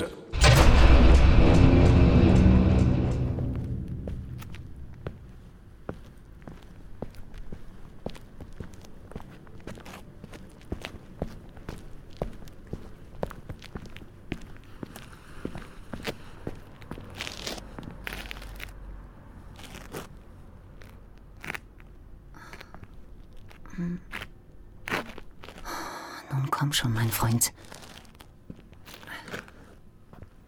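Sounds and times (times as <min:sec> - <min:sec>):
loud harsh burst of noise from car break-in: 0:00.4 - 0:05.4
speech: 0:26.8 - 0:27.8.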